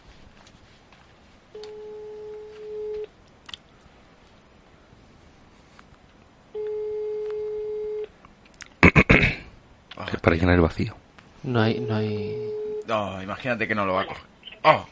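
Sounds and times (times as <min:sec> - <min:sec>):
phone ringback tone on speakerphone: 0:01.6 - 0:03.1, 0:06.6 - 0:08.1, 0:11.6 - 0:12.9
speech: 0:10.3 - 0:14.8.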